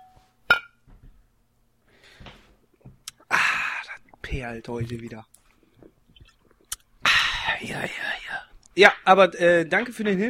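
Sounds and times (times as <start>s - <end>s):
glasses clinking in a toast: 0.0s - 0.8s
speech: 4.3s - 5.4s, 7.6s - 8.1s, 8.8s - 10.2s.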